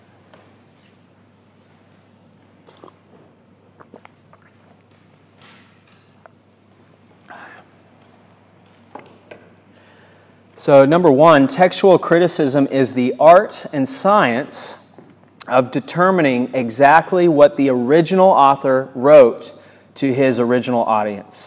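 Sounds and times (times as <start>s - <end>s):
slurps and swallows: 2.6s - 5.0s
person sipping water: 2.6s - 5.4s
speech: 10.6s - 14.8s, 15.5s - 21.4s.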